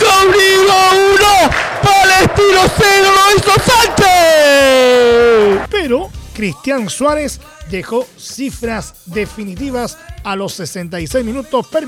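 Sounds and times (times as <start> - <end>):
crowd noise: 0.0 - 5.7
person shouting goal: 0.0 - 5.7
speech: 6.0 - 11.8.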